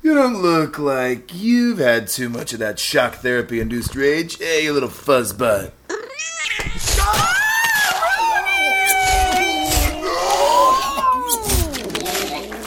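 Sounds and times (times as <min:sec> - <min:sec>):
speech: 0:00.1 - 0:07.3
overlapping snarling cries: 0:05.9 - 0:12.6
angry cat-like creature yowling and screeching: 0:06.0 - 0:12.6
bursts of hissing: 0:06.8 - 0:12.6.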